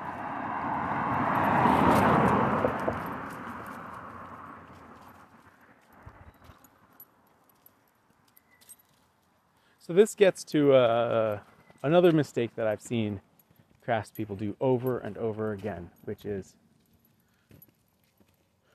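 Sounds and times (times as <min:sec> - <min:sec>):
car passing by on a road: 0:00.0 - 0:06.4
speech: 0:09.9 - 0:16.6.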